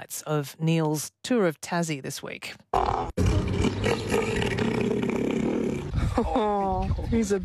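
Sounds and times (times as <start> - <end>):
speech: 0.1 - 3.2, 6.2 - 7.4
southern elephant seal roaring: 2.7 - 6.0.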